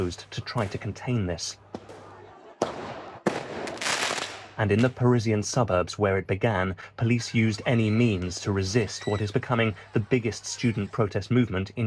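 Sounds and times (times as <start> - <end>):
speech: 0.0 - 1.7, 4.6 - 11.8
laughter: 1.8 - 2.7, 7.3 - 11.8
firework mortars fired at riot police during a student protest in Bordeaux: 1.8 - 4.6
crackling hiss of firework mortars: 3.4 - 4.7.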